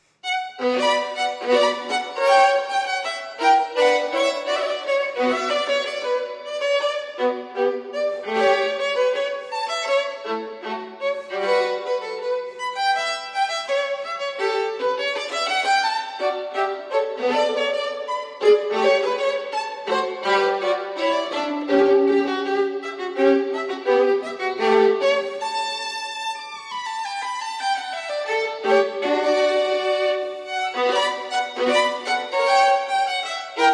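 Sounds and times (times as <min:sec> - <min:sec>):
solo violin piece: 0:00.0 - 0:33.7.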